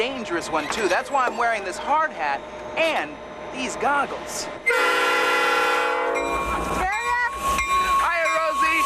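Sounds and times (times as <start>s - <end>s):
rumbling rail-yard noise: 0.0s - 8.8s
speech: 0.2s - 4.9s
loud steady train horn blaring: 4.6s - 8.2s.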